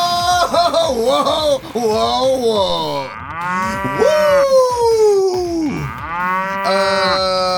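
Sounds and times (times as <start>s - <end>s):
laughter: 0.1s - 2.6s
speech: 1.7s - 4.7s
electronic cow moos from a toy championship belt: 3.1s - 4.4s, 5.8s - 7.4s.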